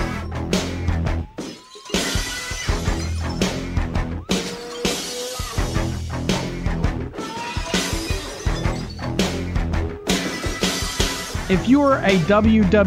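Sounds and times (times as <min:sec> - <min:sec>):
driving heavy rock track: 0:00.0 - 0:01.4, 0:02.0 - 0:12.8
glass shattering: 0:01.3 - 0:06.0, 0:07.2 - 0:09.4, 0:10.1 - 0:11.5
speech: 0:11.5 - 0:12.8.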